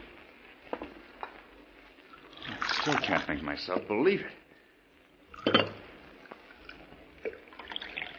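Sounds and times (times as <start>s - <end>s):
coffee pouring into a cup: 2.1s - 3.4s, 5.3s - 8.1s
speech: 2.8s - 4.4s
coffee cups and dishes clinking on table: 5.4s - 5.8s.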